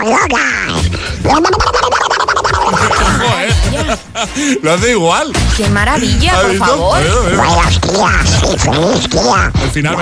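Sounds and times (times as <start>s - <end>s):
voice doing a raspy cartoon duck impression: 0.0s - 4.1s, 6.8s - 9.6s
speech: 0.0s - 10.0s
laughter: 2.4s - 5.1s, 6.1s - 9.5s.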